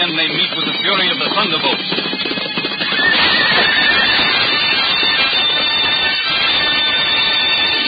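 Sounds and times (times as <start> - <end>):
speech: 0.0 - 2.4
rumble of horse hooves pounding turf across a green field: 0.0 - 7.8
horses whinnying shrilly: 2.8 - 4.8.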